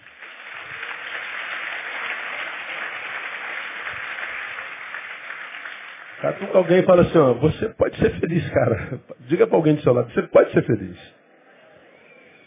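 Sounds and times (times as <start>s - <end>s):
audience applauding: 0.0s - 7.7s
laughter: 6.2s - 9.2s
speech: 6.2s - 11.2s.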